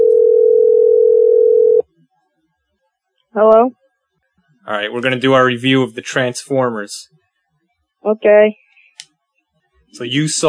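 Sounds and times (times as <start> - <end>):
telephone tone as a call dials out: 0.0 - 1.8
speech: 3.4 - 3.8, 4.7 - 7.2, 8.0 - 8.6, 9.9 - 10.4.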